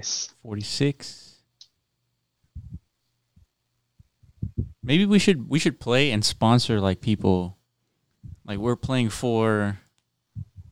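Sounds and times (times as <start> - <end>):
speech: 0.0 - 1.3, 4.8 - 7.6, 8.5 - 9.8
heartbeat thumps: 2.5 - 4.9, 8.2 - 8.4, 10.4 - 10.7.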